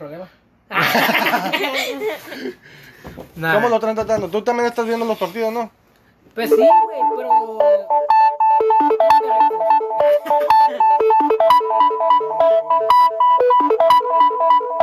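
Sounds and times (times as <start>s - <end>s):
speech: 0.0s - 5.8s, 6.4s - 14.8s
laughter: 0.7s - 2.6s, 10.1s - 11.0s
melodic phone ringtone for an incoming call: 6.5s - 14.8s.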